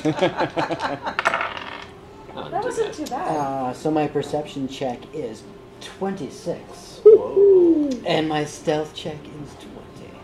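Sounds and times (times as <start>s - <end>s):
laughter: 0.0s - 1.2s
speech: 0.0s - 1.3s, 2.4s - 9.7s
steel dice rolled for a stealth check clattering across a hard surface: 1.2s - 1.9s.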